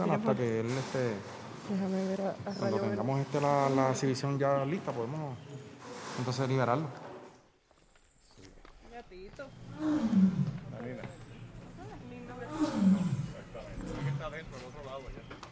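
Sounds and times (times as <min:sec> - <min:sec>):
speech: 0:00.0 - 0:07.0, 0:09.1 - 0:11.2
lioness roaring: 0:09.7 - 0:10.7, 0:12.4 - 0:14.4
lioness low growling: 0:09.7 - 0:11.2, 0:12.3 - 0:14.7.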